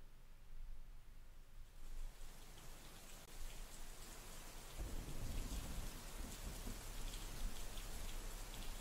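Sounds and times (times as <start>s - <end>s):
heavy winter rain at night in the countryside: 1.8s - 8.7s.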